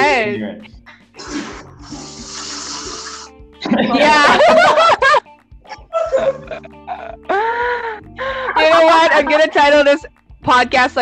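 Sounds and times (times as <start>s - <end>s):
speech: 0.3s - 0.8s, 3.8s - 4.8s, 8.8s - 11.0s
toilet flushing: 1.2s - 3.3s
laughter: 3.6s - 9.5s.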